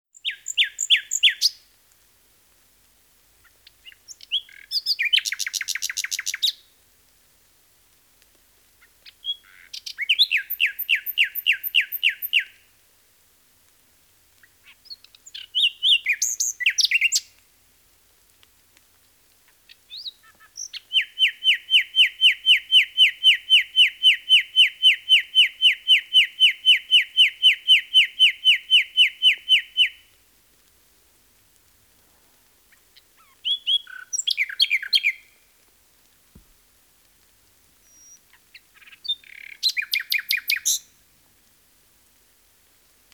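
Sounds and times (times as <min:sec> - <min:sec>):
nightingale singing: 0:00.1 - 0:01.6, 0:03.4 - 0:06.7, 0:08.8 - 0:12.6, 0:14.4 - 0:17.4, 0:19.5 - 0:30.1, 0:32.7 - 0:35.5, 0:37.8 - 0:40.9.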